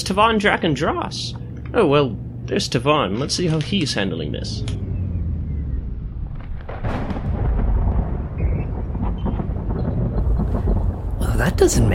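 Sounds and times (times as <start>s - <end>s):
speech: 0.0s - 4.8s, 11.4s - 11.9s
heavy thunder from a lightning storm rumbling: 4.4s - 11.9s.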